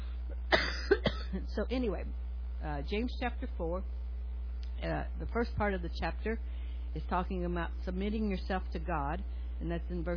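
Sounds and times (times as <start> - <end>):
low steady hum: 0.0 - 10.1
person coughing: 0.3 - 1.4
speech: 1.6 - 4.0, 4.8 - 10.1.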